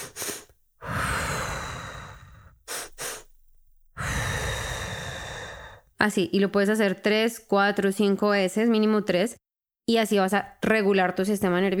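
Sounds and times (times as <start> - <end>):
calming breathing, short nose inhales and long smooth exhale: 0.0 - 5.9
speech: 6.0 - 11.7.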